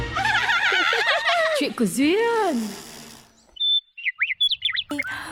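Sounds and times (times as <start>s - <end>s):
laughter: 0.2s - 1.7s
speech: 1.8s - 2.9s
birds chirping: 3.3s - 5.3s.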